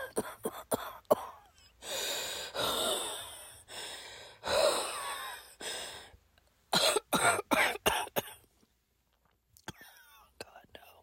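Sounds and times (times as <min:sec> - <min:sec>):
person with asthma coughing during an attack: 0:00.0 - 0:01.5, 0:06.8 - 0:08.4
person with asthma gasping for breath with wheezy inhalations: 0:01.6 - 0:06.2.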